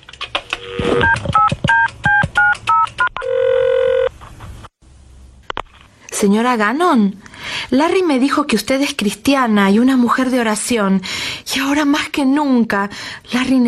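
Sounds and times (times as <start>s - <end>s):
longer steady tone: 0.5s - 2.2s, 2.7s - 4.1s
telephone dialing tones: 0.5s - 4.1s
speech: 6.2s - 13.6s.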